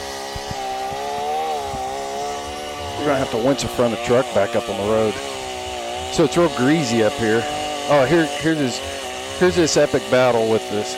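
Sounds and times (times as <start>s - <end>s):
MS-21 chainsaw with a dull, sloppy chain cutting wood: 0.0s - 10.9s
speech: 3.0s - 5.3s, 6.1s - 10.9s.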